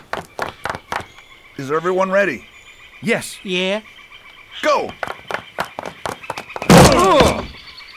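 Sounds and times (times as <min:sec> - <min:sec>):
sharp wooden thumps: 0:00.0 - 0:01.2, 0:04.8 - 0:07.6
speech: 0:01.6 - 0:04.0, 0:04.6 - 0:05.1
people shouting over the impact: 0:06.7 - 0:07.5.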